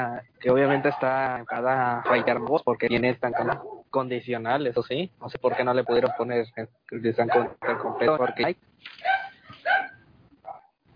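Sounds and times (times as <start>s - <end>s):
speech: 0.0s - 9.1s
dog barking: 0.5s - 2.6s, 3.2s - 3.8s, 5.5s - 6.3s, 7.2s - 10.8s.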